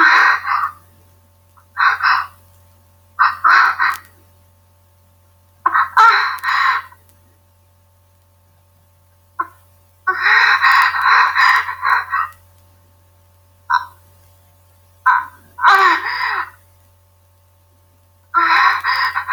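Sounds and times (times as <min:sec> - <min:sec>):
toad croaking in harsh rasping bursts: 0:00.0 - 0:00.9, 0:01.6 - 0:02.4, 0:03.2 - 0:04.2, 0:05.6 - 0:07.0, 0:09.4 - 0:12.4, 0:13.7 - 0:14.1, 0:15.0 - 0:16.6, 0:18.3 - 0:19.3
low steady hum: 0:00.0 - 0:19.3.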